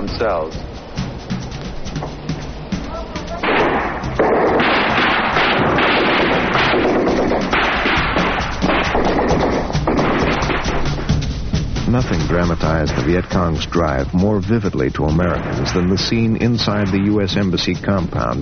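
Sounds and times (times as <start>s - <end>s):
speech: 0.2s - 0.7s, 11.9s - 18.4s
heavy thumps on an archival recording: 0.6s - 18.4s
sniper gunshots at an embassy compound: 3.4s - 11.2s, 11.9s - 13.5s, 15.2s - 17.8s.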